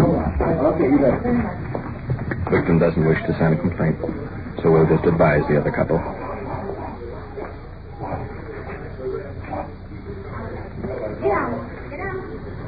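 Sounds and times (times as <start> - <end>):
noisy background: 0.0 - 12.6
speech: 1.0 - 1.8, 2.5 - 6.3
two Great Dane dogs barking: 5.5 - 9.9.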